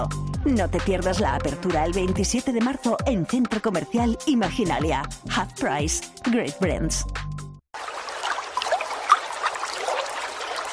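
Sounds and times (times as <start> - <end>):
speech: 0.0 - 7.2
water trickling from a tap: 7.8 - 10.7.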